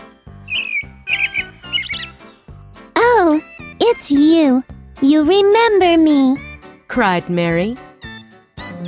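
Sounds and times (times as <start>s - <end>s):
robin chirping: 0.3s - 2.5s
speech: 3.4s - 7.8s.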